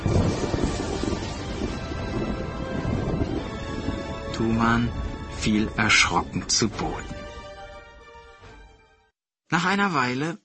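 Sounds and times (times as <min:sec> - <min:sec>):
gusty wind-like noise: 0:00.0 - 0:07.4
thunder and lightning storm sound effect: 0:00.0 - 0:07.8
speech: 0:04.4 - 0:07.2, 0:09.6 - 0:10.4.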